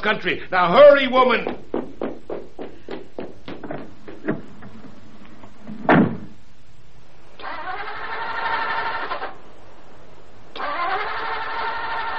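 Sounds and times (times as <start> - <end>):
speech: 0.0 - 1.7
loud thump: 5.7 - 6.4
car engine cranking but failing to start: 7.4 - 9.4, 10.6 - 12.1
car starter whirring with the choke pulled out: 7.4 - 9.4, 10.6 - 12.1.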